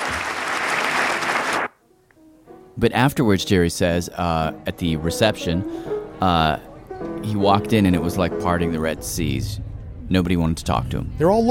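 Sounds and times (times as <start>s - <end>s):
crowd applauding: 0.0s - 1.8s
speech: 2.8s - 11.4s.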